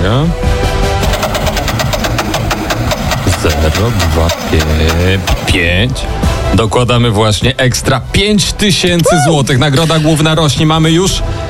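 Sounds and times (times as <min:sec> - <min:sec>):
speech: 0:00.0 - 0:00.4, 0:03.4 - 0:11.4
prize wheel spinning during a game show: 0:01.0 - 0:05.6.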